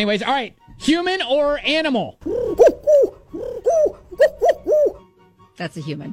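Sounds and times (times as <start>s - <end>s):
speech: 0.0s - 3.1s, 5.6s - 6.1s
turtle dove cooing: 2.2s - 5.0s.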